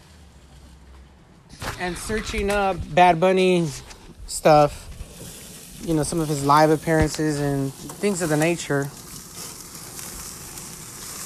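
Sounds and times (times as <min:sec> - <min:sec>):
speech: 0:01.8 - 0:04.8, 0:05.8 - 0:09.0
chicken sizzling on a hot grill: 0:03.1 - 0:11.2.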